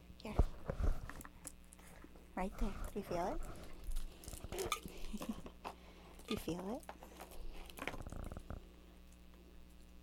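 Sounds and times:
speech: 0:02.4 - 0:03.6, 0:06.3 - 0:06.9
child chewing on a toy: 0:02.6 - 0:05.6, 0:06.2 - 0:10.0.

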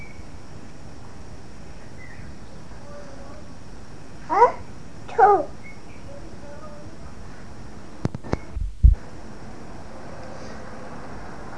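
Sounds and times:
bird singing outdoors: 0:01.7 - 0:03.6, 0:04.3 - 0:06.9.

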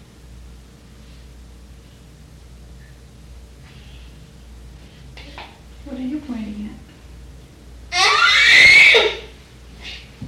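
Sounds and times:
speech: 0:06.0 - 0:06.8
shrill scream: 0:07.9 - 0:09.3.

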